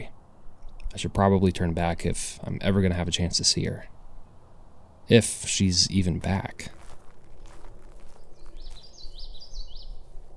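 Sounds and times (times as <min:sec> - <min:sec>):
speech: 0:00.9 - 0:04.0, 0:05.1 - 0:06.8
common yellowthroat warbler singing: 0:06.7 - 0:10.2.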